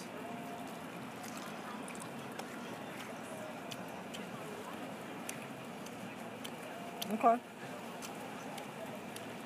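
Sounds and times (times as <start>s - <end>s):
people chewing and smacking while eating chicken wings: 0.0s - 9.4s
speech: 7.1s - 7.7s.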